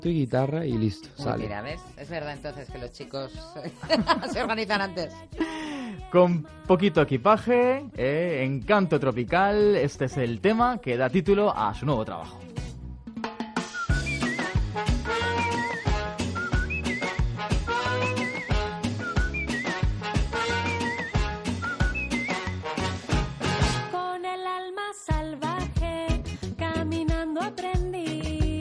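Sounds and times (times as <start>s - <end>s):
speech: 0.0s - 12.6s
upbeat tropical song with steady percussion and bass: 0.0s - 28.5s
laughter: 3.6s - 4.6s
whistled trills imitating birdsong: 13.7s - 14.6s, 15.2s - 19.9s, 20.6s - 22.6s.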